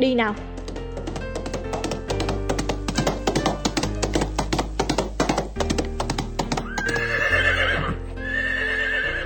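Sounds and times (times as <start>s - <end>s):
horse galloping: 0.0s - 8.0s
horse neighing: 6.6s - 9.2s.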